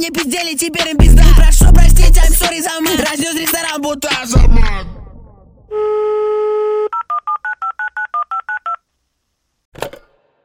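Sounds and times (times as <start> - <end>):
speech: 0.0 - 4.9
telephone keypad dialing tones: 6.9 - 8.8.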